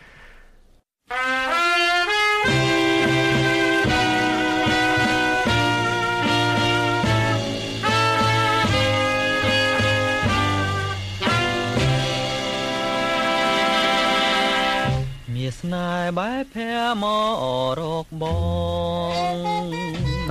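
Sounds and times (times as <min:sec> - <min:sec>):
full band backing with thick rhythmic bass: 0:01.1 - 0:15.8, 0:19.0 - 0:20.3
male crooner singing a Cambodian pop song: 0:15.3 - 0:20.3.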